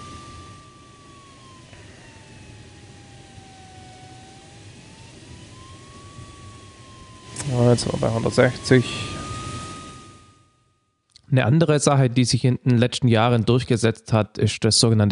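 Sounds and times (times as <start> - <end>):
motor glider engine droning in flight, revving up with more throttle: 0.0 - 11.0
speech: 7.5 - 9.2, 11.3 - 15.0.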